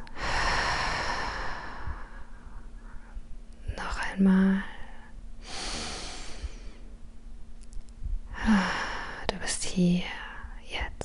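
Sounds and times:
deep breathing in and out during a meditation: 0.0s - 3.3s, 5.4s - 7.0s, 8.3s - 9.3s
speech: 4.1s - 4.7s, 9.8s - 10.2s.

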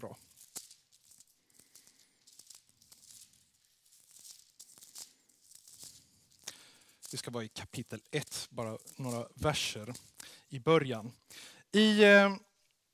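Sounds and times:
speech: 0.0s - 0.3s, 7.1s - 12.5s
thin Bible pages being flipped and rustled: 0.0s - 10.2s.

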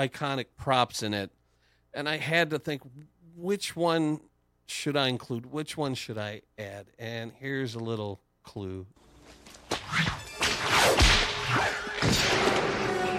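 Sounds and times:
speech: 0.0s - 1.4s, 2.0s - 9.0s, 9.9s - 10.2s
whip cracks and swishing lashes: 9.7s - 13.0s.

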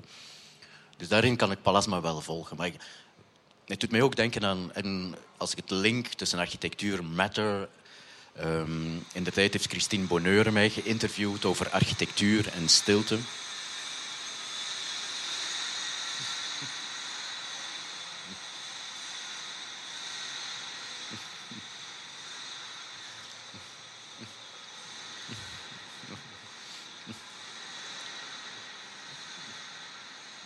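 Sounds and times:
speech: 1.0s - 3.1s, 3.7s - 13.5s
train passing on nearby railway: 9.0s - 30.4s.

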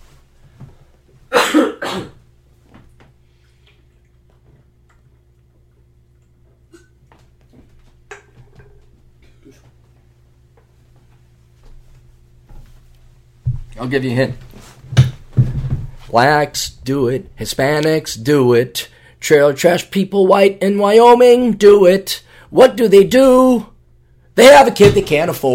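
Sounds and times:
person coughing: 1.3s - 2.2s, 6.7s - 6.9s, 9.2s - 9.8s
throat clearing: 1.3s - 2.2s, 6.7s - 7.0s, 9.2s - 9.8s
speech: 2.0s - 2.2s, 13.8s - 14.5s, 16.1s - 23.7s, 24.4s - 25.5s.

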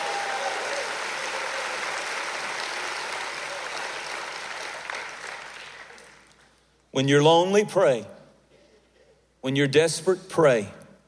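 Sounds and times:
audience clapping in sustained applause: 0.0s - 6.4s
speech: 7.0s - 8.1s, 9.4s - 10.8s.

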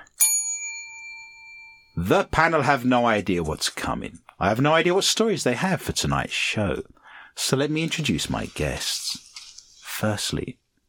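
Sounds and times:
single bright bell strike as a penalty signal: 0.2s - 2.0s
speech: 2.0s - 9.2s, 10.0s - 10.6s.

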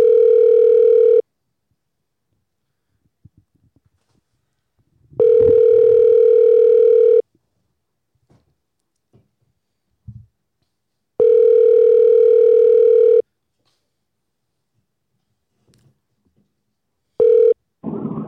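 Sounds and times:
phone ringback tone from a call to a man's cell phone in California: 0.0s - 1.2s, 5.2s - 7.2s, 11.2s - 13.2s, 17.2s - 17.6s.

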